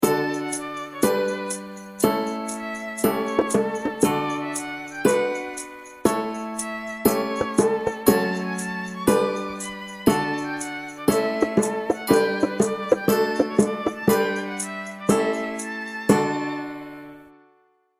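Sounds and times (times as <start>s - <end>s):
music school anthem mix: 0.2s - 17.0s.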